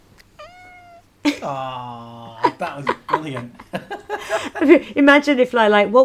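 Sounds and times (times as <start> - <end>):
cat meowing into microphone: 0.4 - 1.1
laughter: 1.3 - 5.0
speech: 1.3 - 6.0.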